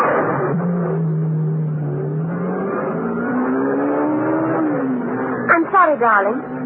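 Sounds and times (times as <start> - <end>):
sports car engine revving and pulling away: 0.0 - 6.6
speech: 5.9 - 6.5.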